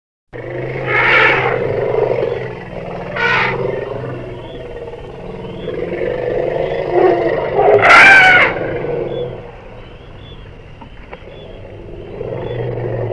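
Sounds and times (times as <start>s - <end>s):
elephant trumpeting: 0.5s - 9.5s.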